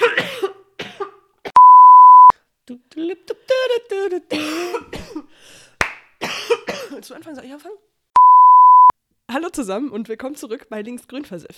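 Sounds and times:
person coughing close to the microphone: 0:00.0 - 0:01.2, 0:04.3 - 0:05.4, 0:06.2 - 0:07.1
steady electronic beep: 0:01.6 - 0:02.3, 0:08.2 - 0:08.9
speech: 0:07.2 - 0:07.9, 0:09.5 - 0:11.5.

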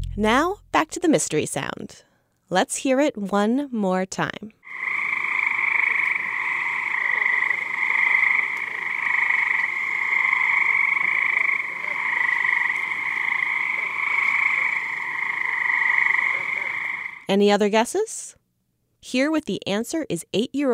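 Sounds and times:
speech: 0:00.2 - 0:04.6, 0:17.3 - 0:18.4, 0:19.0 - 0:20.7
cricket frogs from New Jersey calling in a chorus: 0:04.6 - 0:17.3.

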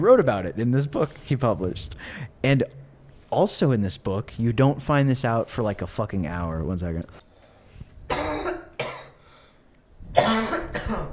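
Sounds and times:
speech: 0:00.0 - 0:07.3
person coughing: 0:08.1 - 0:09.2, 0:10.1 - 0:11.1.

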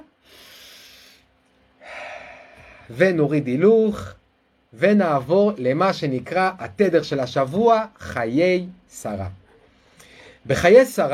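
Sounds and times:
long deep breath drawn in through the nose: 0:00.2 - 0:02.9
speech: 0:02.9 - 0:09.4, 0:10.4 - 0:11.1.

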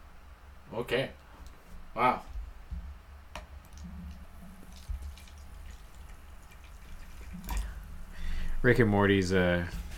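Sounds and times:
low hum: 0:00.0 - 0:09.9
speech: 0:00.8 - 0:01.2, 0:02.0 - 0:02.3, 0:08.6 - 0:09.8
bubbles crackling: 0:03.7 - 0:08.1
fizzy drink being poured: 0:03.8 - 0:08.1.

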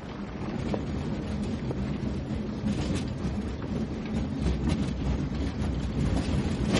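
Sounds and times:
dragged suitcase: 0:00.0 - 0:06.7
pushed cart wheels rattling over a hard surface: 0:00.0 - 0:06.7.

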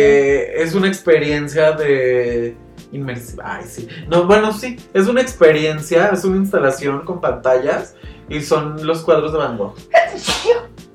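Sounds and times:
speech: 0:00.0 - 0:10.8
person sneezing: 0:10.0 - 0:10.7.

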